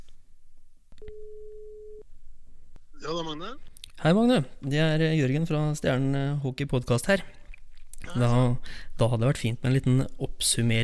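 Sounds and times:
faint noise: 0.0 - 10.8
phone ringback tone of an outgoing call: 1.0 - 2.0
speech: 3.0 - 7.4, 8.1 - 10.8.

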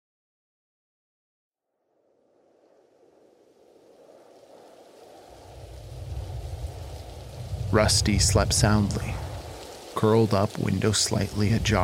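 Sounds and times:
deep rumbling wash: 2.0 - 11.8
pattering rain: 3.7 - 11.8
speech: 7.8 - 9.2, 10.0 - 11.8.

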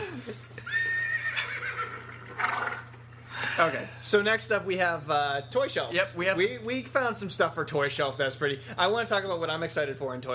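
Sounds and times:
horse neighing: 0.6 - 3.0
horse snorting: 1.3 - 3.0
steady low hum: 1.8 - 10.3
speech: 3.6 - 10.3.

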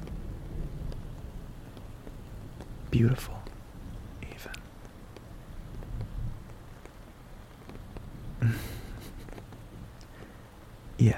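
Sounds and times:
steady rain falling at night: 0.0 - 11.1
person whispering softly: 2.9 - 3.5, 4.2 - 4.7, 11.0 - 11.1
speech: 3.0 - 3.4.

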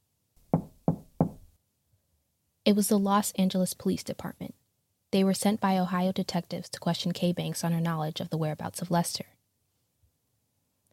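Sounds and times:
firm knocks on a door: 0.5 - 1.5
speech: 2.7 - 9.3.

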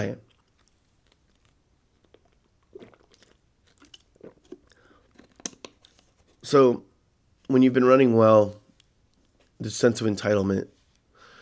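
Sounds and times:
speech: 0.0 - 0.3, 6.5 - 6.9, 7.5 - 8.6, 9.6 - 10.7
person slurping a sip of water: 2.0 - 5.5
wet swallows of water: 2.2 - 5.4.

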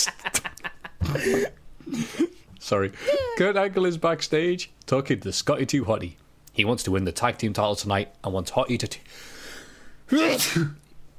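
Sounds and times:
speech: 0.0 - 0.4, 1.2 - 2.1, 2.7 - 9.3, 10.1 - 10.8
person imitating a loud sneeze: 10.1 - 10.8.

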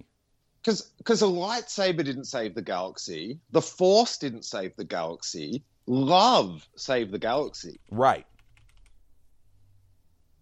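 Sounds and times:
speech: 0.6 - 8.3
key clacks on a loud computer keyboard: 7.8 - 9.0.

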